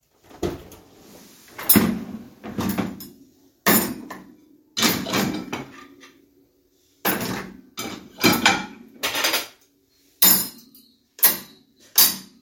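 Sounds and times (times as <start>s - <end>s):
dishwasher being loaded: 1.6s - 3.1s, 3.7s - 5.8s, 7.1s - 9.5s.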